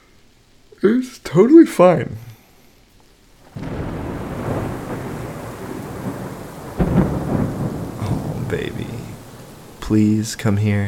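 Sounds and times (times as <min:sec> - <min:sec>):
soft rain: 0:00.0 - 0:10.8
speech: 0:00.8 - 0:02.3, 0:09.9 - 0:10.8
thunder rumbling during a thunderstorm: 0:03.4 - 0:10.0.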